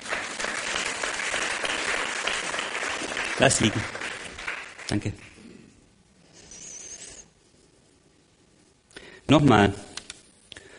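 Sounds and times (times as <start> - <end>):
audience applause: 0.0 - 5.2
speech: 3.4 - 4.0, 4.9 - 5.3, 9.3 - 9.9.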